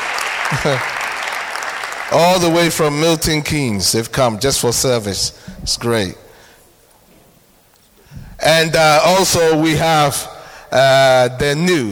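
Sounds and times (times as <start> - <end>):
audience clapping at a church service: 0.0 - 2.9
speech: 0.5 - 1.0, 2.1 - 6.2, 8.4 - 11.8.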